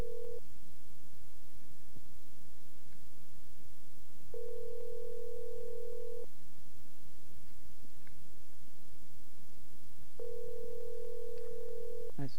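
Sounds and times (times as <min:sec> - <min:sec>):
telephone line ringing back with electronic tones: 0:00.0 - 0:00.4, 0:04.3 - 0:06.3, 0:10.2 - 0:12.2.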